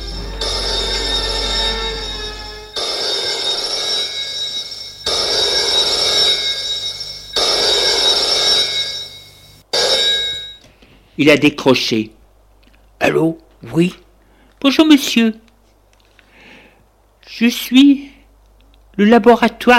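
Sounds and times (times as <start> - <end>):
telephone ringing: 0.0 - 10.7
speech: 11.2 - 12.2, 13.0 - 14.0, 14.6 - 15.4, 17.3 - 18.1, 19.0 - 19.7.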